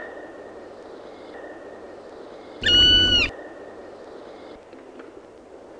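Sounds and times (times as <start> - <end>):
Black woodpecker giving fast repeated ringing calls: 2.6 - 3.3.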